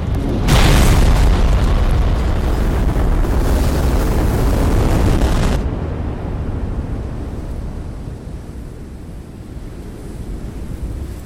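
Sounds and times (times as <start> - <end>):
uranium atomic bomb exploding over a city: 0.0 - 6.5
low rumble after uranium atomic bomb explosion: 0.0 - 11.0.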